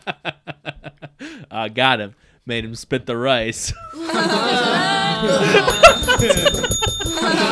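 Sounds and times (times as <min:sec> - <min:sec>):
speech: 0:01.7 - 0:07.5
people talking and laughing loudly: 0:03.9 - 0:07.5
small bell ringing: 0:05.7 - 0:07.5.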